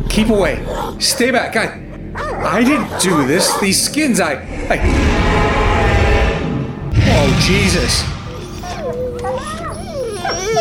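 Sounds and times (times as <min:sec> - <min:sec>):
dogs whimpering: 0:00.0 - 0:04.2, 0:08.3 - 0:10.5
speech: 0:00.2 - 0:06.0, 0:07.2 - 0:08.2.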